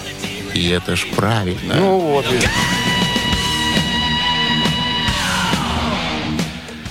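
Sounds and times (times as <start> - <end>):
loud dense distorted guitars: 0.0 - 6.8
speech: 0.5 - 2.8
thrash metal singer screaming: 2.2 - 6.3.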